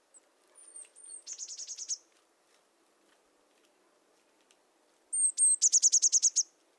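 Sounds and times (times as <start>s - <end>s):
Eurasian blue tit calling: 0.6s - 2.0s, 5.1s - 6.5s.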